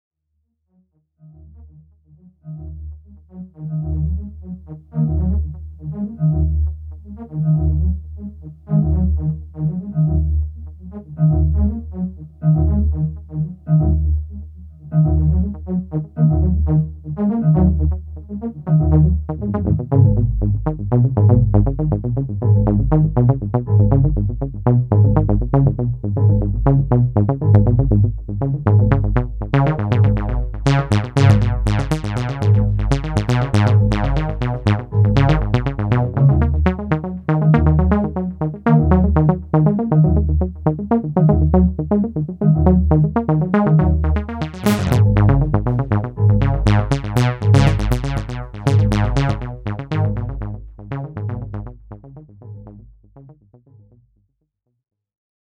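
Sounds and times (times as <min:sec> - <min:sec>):
analogue synthesizer: 0:02.4 - 0:53.2.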